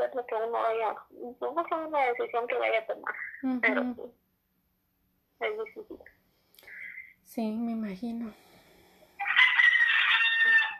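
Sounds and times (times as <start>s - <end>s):
speech: 0.2s - 4.2s, 5.4s - 6.2s, 7.3s - 8.5s
rooster crowing: 9.2s - 10.7s.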